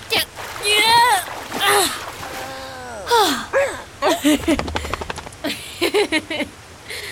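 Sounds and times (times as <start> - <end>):
salt water splashing and sloshing as a dog is helped out: 0.0 - 5.4
strained effortful vocal sounds: 0.2 - 4.2.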